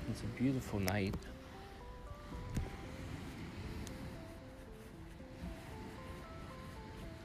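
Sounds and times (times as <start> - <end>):
faint tonal sounds: 0.0 - 7.2
speech: 0.2 - 1.4
ocean waves crashing on a beach: 1.4 - 4.5.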